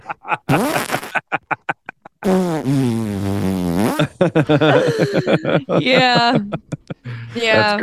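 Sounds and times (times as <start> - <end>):
laughter: 0.0 - 2.3, 3.9 - 7.8
voice imitating farting: 0.5 - 1.2, 2.2 - 4.2
speech: 4.4 - 6.6, 7.4 - 7.8.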